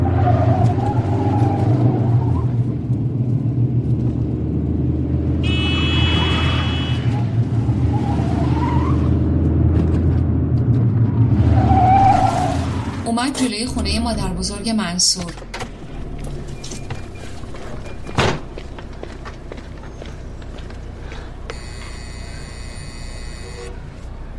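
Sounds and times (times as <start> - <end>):
car engine rumble from a car driven fast at night: 0.0 - 24.3
speech: 13.4 - 15.6.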